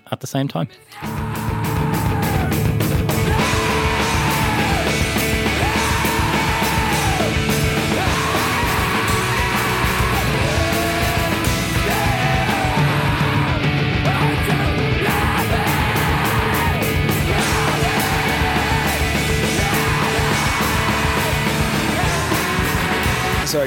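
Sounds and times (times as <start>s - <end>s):
man screaming loudly: 0.9s - 23.5s
dense distorted full-volume music: 1.0s - 23.6s.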